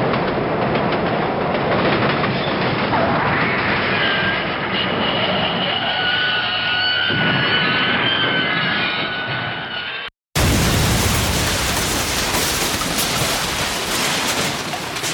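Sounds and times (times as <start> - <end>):
rolling rail cars rumbling in a train wreck: 0.0 - 15.1
shrill metallic screeching: 3.5 - 10.1.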